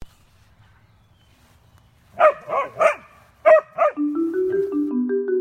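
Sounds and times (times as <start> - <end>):
dog barking: 2.2 - 4.0
stepped tonal notes: 3.7 - 5.3.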